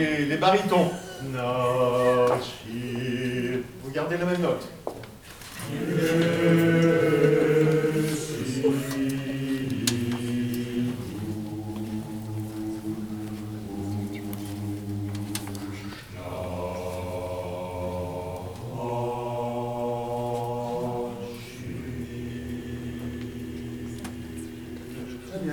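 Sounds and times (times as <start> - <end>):
bass voices singing a chorale: 0.0 - 4.1, 5.6 - 25.5.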